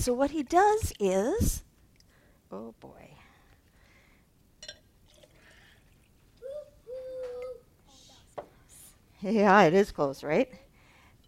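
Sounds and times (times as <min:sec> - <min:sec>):
speech: 0:00.0 - 0:01.7, 0:02.5 - 0:03.2, 0:09.2 - 0:10.6
liquid pouring into a container with a hollow filling tone: 0:05.0 - 0:06.1.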